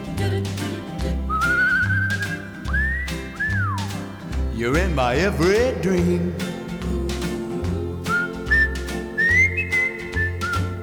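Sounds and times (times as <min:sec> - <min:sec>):
song's backing music with steady rhythmic bass: 0:00.0 - 0:10.8
person whistling a tune: 0:01.2 - 0:05.5, 0:08.1 - 0:10.8
speech: 0:04.6 - 0:06.5.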